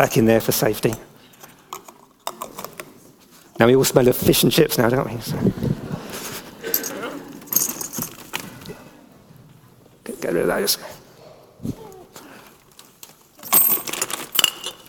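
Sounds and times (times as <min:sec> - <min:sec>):
speech: 0:00.0 - 0:01.1, 0:03.6 - 0:05.8, 0:10.3 - 0:11.0
coins being dropped and handled with a glass during an experiment: 0:06.7 - 0:08.4, 0:13.4 - 0:14.8.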